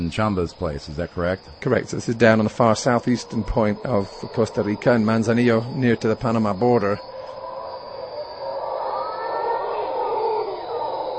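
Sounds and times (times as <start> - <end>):
speech: 0.1 - 7.1
howler monkeys roaring in a chorus: 2.1 - 11.1.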